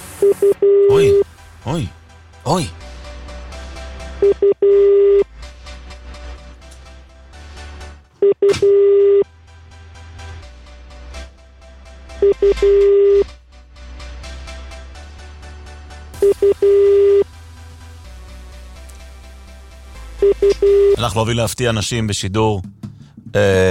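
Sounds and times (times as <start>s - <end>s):
telephone dialing tones during a live on-air call: 0.2s - 1.2s, 4.2s - 5.2s, 8.2s - 9.2s, 12.2s - 13.3s, 16.2s - 17.2s, 20.2s - 21.0s
speech: 0.2s - 2.8s, 4.2s - 5.2s, 8.4s - 9.2s, 12.3s - 13.2s, 21.0s - 23.6s.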